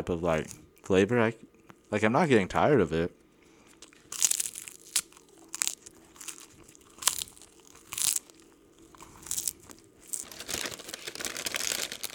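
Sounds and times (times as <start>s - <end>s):
speech: 0.0s - 3.2s
crinkling family-sized bag of spicy snack chips: 3.8s - 12.1s
spicy snack chips crunching: 3.8s - 12.1s.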